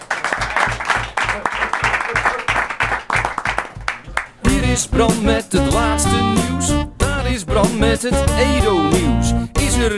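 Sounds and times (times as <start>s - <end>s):
crowd applauding with many hands clapping: 0.0s - 4.4s
regular low thumping beat: 2.8s - 9.9s
speech: 4.7s - 9.9s.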